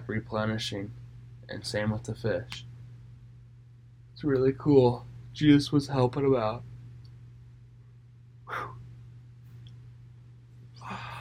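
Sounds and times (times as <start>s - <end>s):
steady low hum: 0.0s - 11.1s
speech: 0.1s - 2.7s, 4.2s - 6.7s
breathy yawn into the microphone: 8.5s - 8.8s, 10.8s - 11.1s.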